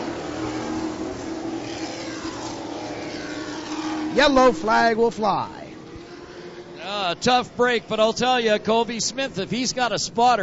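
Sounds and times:
Bandolero race car engines droning on a track: 0:00.0 - 0:10.4
speech: 0:04.2 - 0:05.6, 0:07.0 - 0:10.4.

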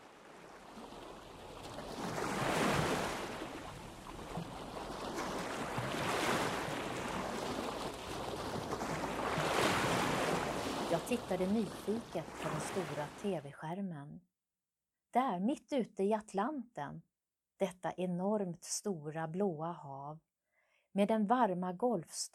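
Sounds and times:
wind: 0:00.0 - 0:13.3
ocean waves rolling and washing in: 0:00.0 - 0:13.4
speech: 0:11.1 - 0:14.3, 0:15.1 - 0:20.3, 0:21.0 - 0:22.3.

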